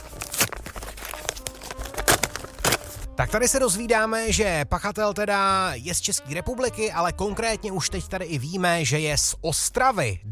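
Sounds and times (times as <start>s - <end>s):
paper envelope being torn open: 0.0s - 3.2s
speech: 3.2s - 10.3s.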